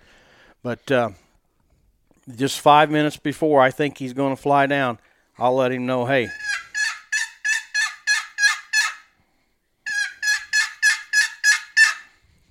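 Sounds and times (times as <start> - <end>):
speech: 0.6 - 1.2, 2.3 - 6.4
excited wild turkey hen yelps imitated on a turkey call: 6.2 - 9.1, 9.9 - 12.2.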